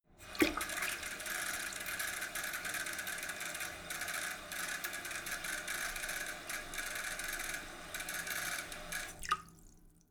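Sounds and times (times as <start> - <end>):
water filling sink with splatter: 0.2 - 5.7, 6.3 - 10.0.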